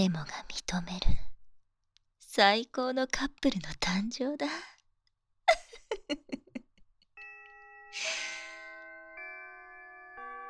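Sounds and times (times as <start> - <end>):
speech: 0.0 - 1.2, 2.4 - 4.7
electronic school chime: 7.2 - 10.4.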